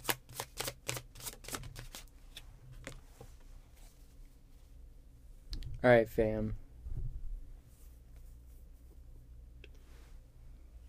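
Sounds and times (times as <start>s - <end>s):
playing cards being shuffled: 0.0s - 3.0s
speech: 5.8s - 6.6s.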